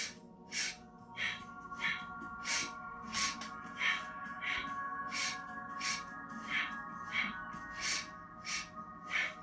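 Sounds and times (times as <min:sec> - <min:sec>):
rapid rhythmic breathing during a breathing exercise: 0:00.0 - 0:09.4
steady tonal drone: 0:00.0 - 0:09.4.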